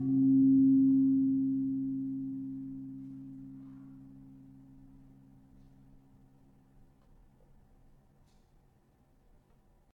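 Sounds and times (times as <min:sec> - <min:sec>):
tuned gamelan gong in C sharp struck: 0:00.0 - 0:05.4.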